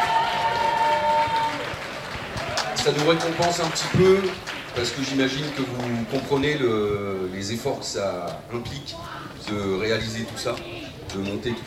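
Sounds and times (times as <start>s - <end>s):
audience applauding at an evening event: 0.0s - 6.7s
speech: 2.8s - 11.6s.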